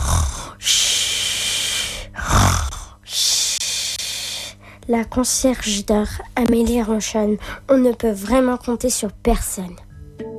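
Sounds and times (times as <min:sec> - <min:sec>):
woman snoring while asleep: 0:00.0 - 0:04.6
speech: 0:04.9 - 0:09.9.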